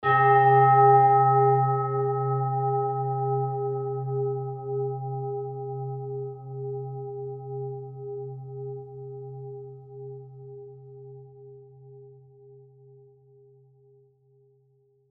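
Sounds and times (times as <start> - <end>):
Tibetan singing bowl om set ringing: 0.0 - 10.0.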